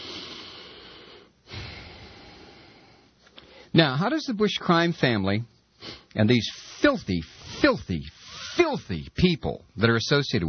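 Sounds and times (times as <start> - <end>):
deep breath: 0.0 - 3.7, 5.8 - 8.6
speech: 3.7 - 10.4.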